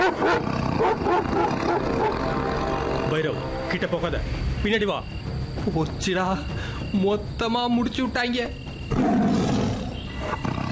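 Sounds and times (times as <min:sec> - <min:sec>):
tiger roaring: 0:00.0 - 0:03.2, 0:08.9 - 0:10.7
speech: 0:03.2 - 0:09.2.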